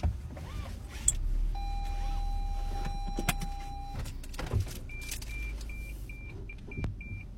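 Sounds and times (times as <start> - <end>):
car engine turning over and rumbling: 0.0 - 7.3
car warning chime: 1.5 - 4.2, 4.8 - 7.3
repeated high beeps: 1.6 - 4.0, 4.9 - 7.3.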